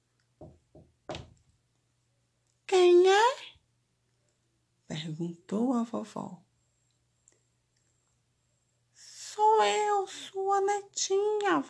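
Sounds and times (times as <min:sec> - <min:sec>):
knocking on a wooden door: 0:00.4 - 0:01.4
speech: 0:05.1 - 0:06.5, 0:09.6 - 0:11.6.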